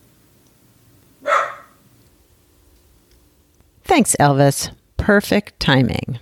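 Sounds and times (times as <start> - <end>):
dog barking: 1.2 - 1.8
speech: 3.9 - 6.2.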